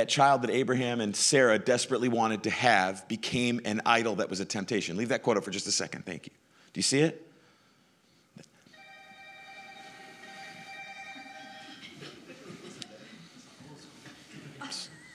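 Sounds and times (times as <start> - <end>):
speech: 0.0 - 7.3
old telephone ringing loudly: 8.8 - 12.1.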